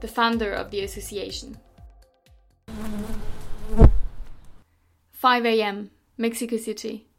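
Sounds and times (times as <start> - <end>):
speech: 0.0 - 1.7, 5.2 - 7.1
honeybees buzzing from a rooftop beehive in Mexico City: 2.7 - 4.6
soft low thumps: 3.6 - 4.5.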